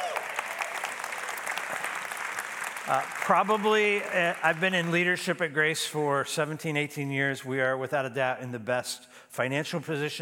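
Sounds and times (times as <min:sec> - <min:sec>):
room full of people applauding: 0:00.0 - 0:05.4
speech: 0:02.9 - 0:10.2.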